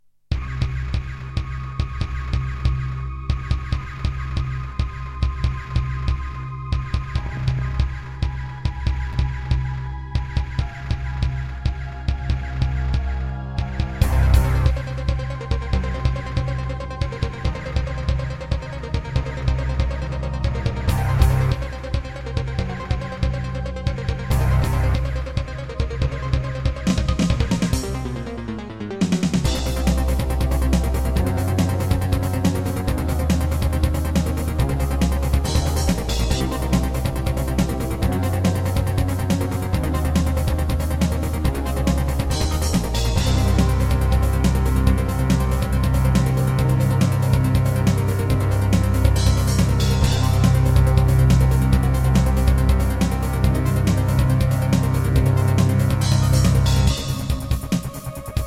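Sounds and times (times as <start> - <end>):
Casio GZ-50M synthesizer: 0.3 - 58.4.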